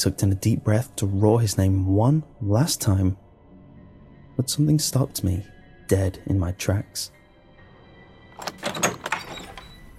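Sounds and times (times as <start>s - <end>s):
speech: 0.0s - 3.2s, 4.4s - 7.2s
house door bursting open: 8.4s - 9.8s.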